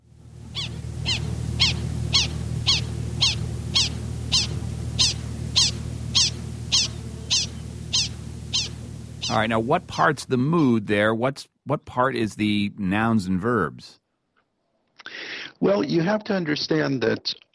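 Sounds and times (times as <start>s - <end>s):
low constant rumble: 0.0s - 10.5s
prairie dog alarm chirps: 0.5s - 9.6s
speech: 9.3s - 14.0s, 15.6s - 17.4s.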